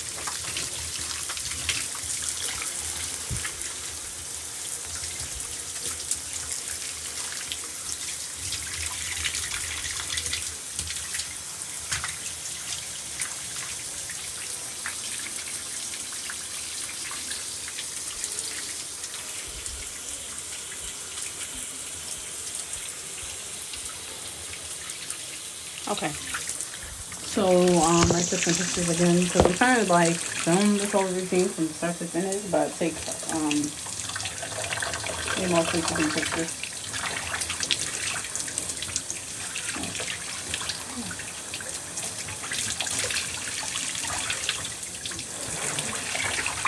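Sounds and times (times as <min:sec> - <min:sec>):
warm bath water running from a tap: 0:00.0 - 0:46.6
speech: 0:25.9 - 0:26.3, 0:27.4 - 0:33.9, 0:35.4 - 0:36.6
faint splashing as a basin or tub fills: 0:25.9 - 0:38.3.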